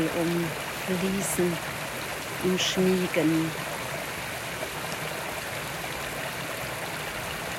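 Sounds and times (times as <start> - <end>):
speech: 0.0 - 1.8, 2.4 - 3.7
babbling stream water splashing and trickling: 0.0 - 7.5.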